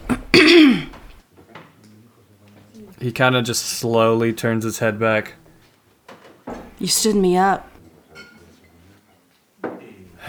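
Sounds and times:
woman clearing her throat loudly: 0:00.0 - 0:01.1
speech: 0:03.0 - 0:05.4, 0:06.8 - 0:07.7.

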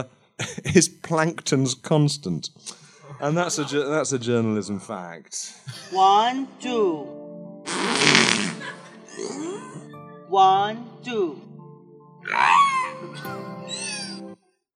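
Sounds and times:
speech: 0:00.0 - 0:07.2, 0:10.3 - 0:11.5, 0:12.3 - 0:13.8
sputtering fart noises: 0:07.7 - 0:09.4.

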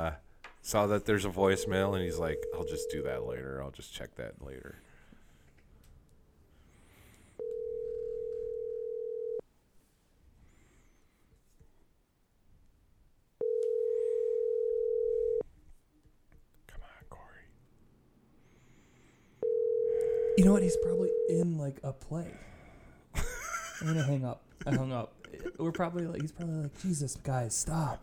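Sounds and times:
speech: 0:00.0 - 0:04.9, 0:20.4 - 0:22.5, 0:23.8 - 0:28.0
telephone ringback tone while a call is placed: 0:01.5 - 0:03.2, 0:07.4 - 0:09.4, 0:13.4 - 0:15.4, 0:19.4 - 0:21.5
laughter: 0:23.2 - 0:27.2.

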